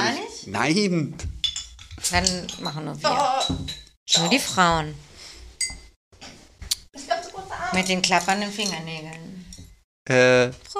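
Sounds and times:
speech: 0.4s - 1.3s, 2.0s - 5.1s, 7.7s - 9.2s, 10.1s - 10.7s
glass beer bottles clinking and rattling: 1.2s - 4.8s, 5.6s - 6.0s, 7.7s - 9.8s.

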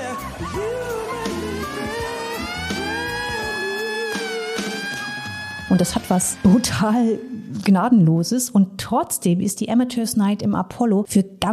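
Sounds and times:
noisy crowd: 0.0s - 6.5s
siren wailing: 0.0s - 7.7s
speech: 5.7s - 11.5s.

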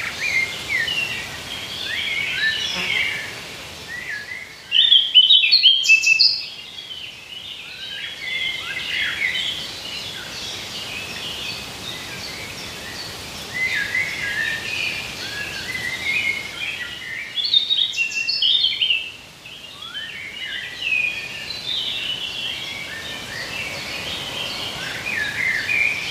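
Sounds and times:
dense chorus of many birds chirping in the woods: 0.0s - 26.1s.

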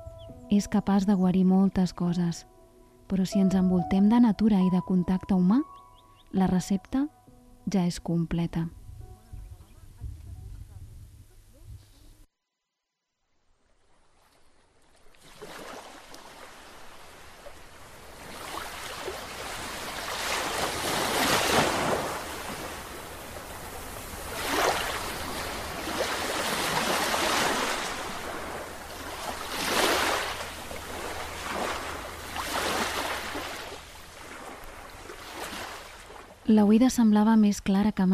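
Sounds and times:
speech: 0.5s - 8.8s, 36.8s - 38.1s
sea waves washing onto the shore: 13.6s - 36.5s
constant low rumble of surf: 16.0s - 36.5s.

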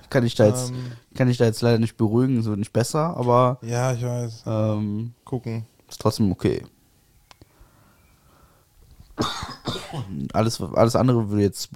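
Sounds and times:
speech: 0.1s - 6.7s, 9.2s - 11.7s
person coughing into microphone: 9.2s - 10.3s.

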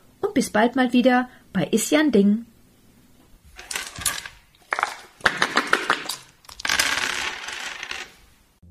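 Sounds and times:
speech: 0.4s - 2.5s
dice rattling in a dice cup: 3.6s - 8.2s.

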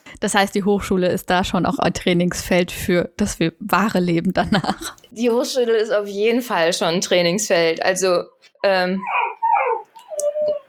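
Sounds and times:
speech: 0.2s - 9.3s
dog barking and whining to be let outside: 9.0s - 10.6s.

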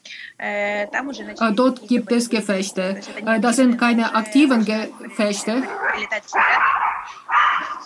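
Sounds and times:
speech: 0.4s - 7.4s
dog barking: 5.6s - 7.8s.

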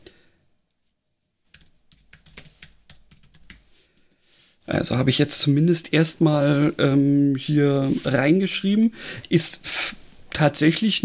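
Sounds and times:
quiet typing on a computer keyboard: 1.5s - 3.6s
speech: 4.7s - 11.0s.

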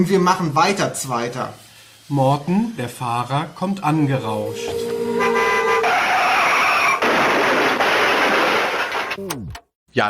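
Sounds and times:
speech: 0.0s - 5.4s, 9.2s - 10.0s
tires screeching under hard braking: 4.3s - 9.3s
car horn blaring: 4.4s - 7.8s.

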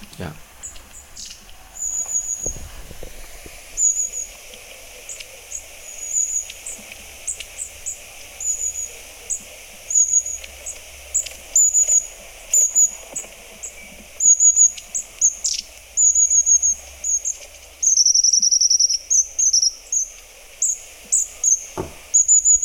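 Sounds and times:
long-tailed tit calls: 0.0s - 2.6s, 3.8s - 22.6s
soft hiss: 0.0s - 22.6s
speech: 0.2s - 0.5s.

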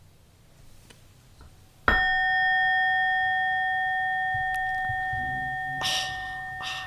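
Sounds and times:
gong struck and ringing: 1.9s - 6.8s.

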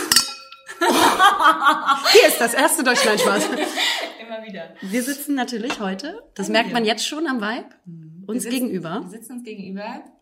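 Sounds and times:
glasses clinking in a toast in an apartment in Hamburg: 0.0s - 0.9s
people laughing: 0.7s - 4.2s
speech: 1.2s - 10.2s.

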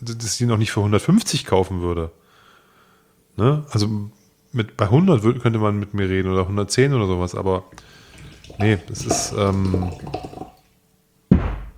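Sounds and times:
speech: 0.0s - 2.2s, 3.4s - 10.5s
water poured aggressively from a water bottle: 7.7s - 10.7s
heavy thud: 11.3s - 11.7s.

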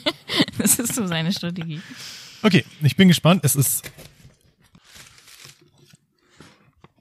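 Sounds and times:
laughter: 0.0s - 1.9s
speech: 0.1s - 4.1s
tearing and crinkling of a parcel's paper packaging: 3.9s - 6.1s.

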